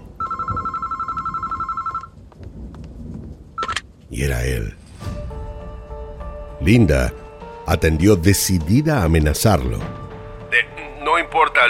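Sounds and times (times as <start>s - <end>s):
telephone ringing with electronic trill: 0.2s - 2.2s
speech: 4.1s - 4.8s, 6.6s - 10.0s, 11.3s - 11.6s.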